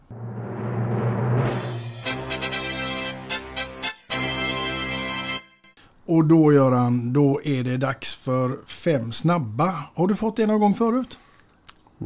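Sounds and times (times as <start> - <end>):
quiz segment musical jingle: 0.1 - 5.7
speech: 6.1 - 11.2.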